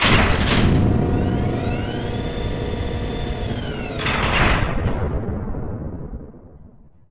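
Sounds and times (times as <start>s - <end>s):
large powered door: 0.0s - 5.2s.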